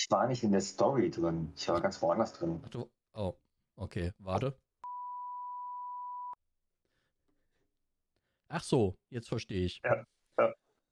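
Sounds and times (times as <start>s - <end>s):
speech: 0.1s - 4.6s, 8.5s - 10.8s
censoring beep tone: 4.8s - 6.4s.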